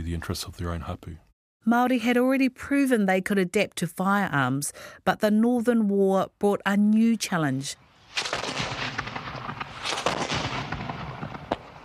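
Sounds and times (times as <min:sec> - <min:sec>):
speech: 0:00.1 - 0:08.3
sharp blasts and cracks of explosive rockets and shells: 0:07.9 - 0:11.8
artillery bombardment of explosive rockets and shells: 0:08.2 - 0:11.8.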